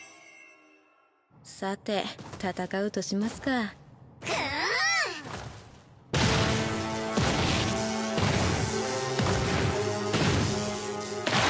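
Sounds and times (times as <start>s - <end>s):
speech: 1.4s - 4.6s
warbling, sweeping electric zap: 6.6s - 11.4s.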